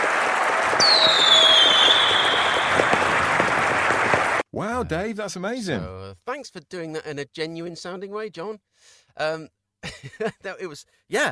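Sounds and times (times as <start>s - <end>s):
fireworks sound effect crackling: 0.0s - 4.4s
fireworks sound effect whistling streak: 0.7s - 4.4s
speech: 4.8s - 11.2s.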